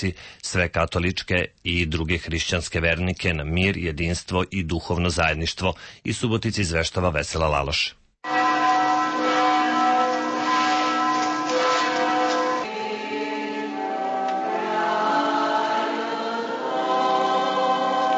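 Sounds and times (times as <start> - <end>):
speech: 0.0 - 8.0
church bells ringing in a resonant peal: 8.2 - 18.1.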